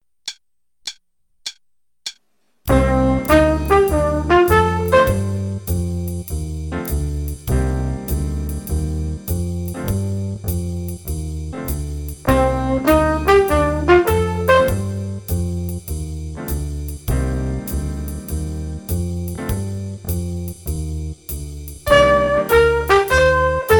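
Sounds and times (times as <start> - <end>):
trumpet: 2.7 - 5.8, 12.3 - 15.3, 21.8 - 23.7
jazz improvisation in C minor: 2.7 - 23.7.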